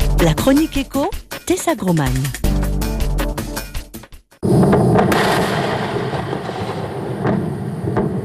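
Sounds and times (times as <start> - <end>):
speech: 0.2 - 2.5
Falcon 9 rocket exploding on the launch pad at Cape Canaveral: 4.4 - 8.2.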